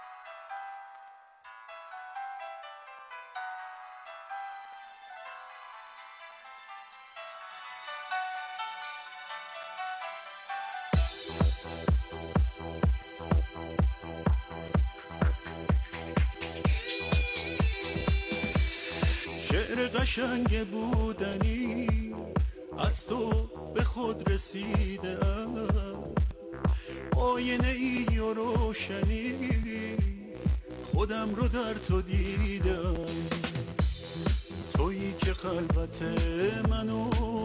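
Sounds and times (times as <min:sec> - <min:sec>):
soft melodic synth line in an instrumental song intro: 0:00.0 - 0:37.4
strong regular beat with punchy bass kicks: 0:11.0 - 0:37.4
speech: 0:20.2 - 0:26.2, 0:27.2 - 0:30.1, 0:31.0 - 0:33.5, 0:34.8 - 0:37.4.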